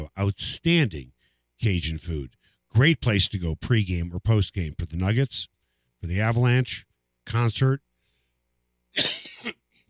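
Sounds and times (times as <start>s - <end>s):
speech: 0.1s - 7.9s, 9.0s - 9.6s
loud harsh cough: 9.0s - 9.7s.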